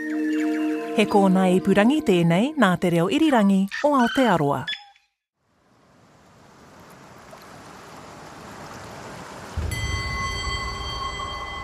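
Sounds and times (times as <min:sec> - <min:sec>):
speech: 0:01.0 - 0:04.7
calm open ocean water washing at night: 0:05.7 - 0:11.6.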